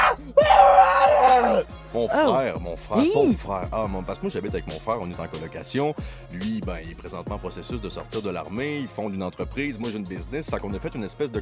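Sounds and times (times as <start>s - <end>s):
person imitating pained screams and groans: 0.0s - 2.3s
speech: 1.5s - 11.4s.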